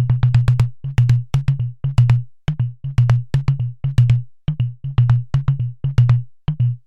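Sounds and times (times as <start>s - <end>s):
hand drums: 0.1s - 6.7s.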